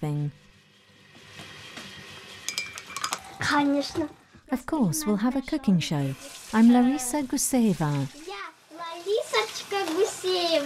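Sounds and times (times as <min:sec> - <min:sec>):
speech: 0:00.0 - 0:00.5, 0:03.6 - 0:08.3, 0:09.9 - 0:10.6
dishes and cutlery clinking during washing up at home: 0:02.4 - 0:03.5.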